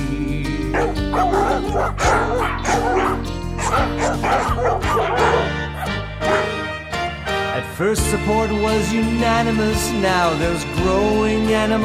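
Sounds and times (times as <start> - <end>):
dogs barking at a dog park: 0.7 - 7.2
speech: 0.8 - 5.5, 7.6 - 11.8
dog whimpering: 0.8 - 6.6.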